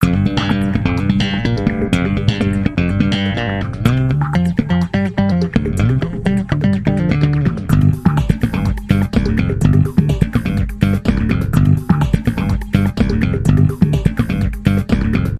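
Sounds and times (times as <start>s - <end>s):
bass through an octaver effect: 0.0s - 15.3s.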